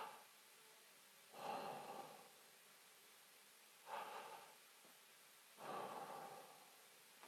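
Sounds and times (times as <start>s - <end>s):
person breathing slowly and audibly: 1.3s - 2.4s, 3.8s - 4.6s, 5.6s - 6.9s.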